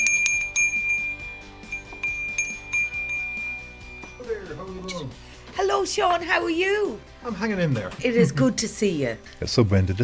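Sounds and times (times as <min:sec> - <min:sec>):
doorbell ringing with a bright high-pitched tone: 0:00.0 - 0:04.5
speech: 0:04.5 - 0:10.0.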